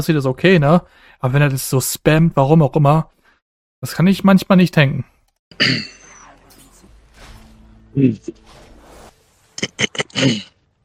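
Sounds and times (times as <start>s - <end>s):
speech: 0.0s - 3.2s, 3.8s - 6.0s, 7.9s - 8.6s, 9.7s - 10.5s
breathing: 0.8s - 1.2s, 3.2s - 3.4s
person clearing throat into a microphone: 5.6s - 6.1s, 9.6s - 10.6s.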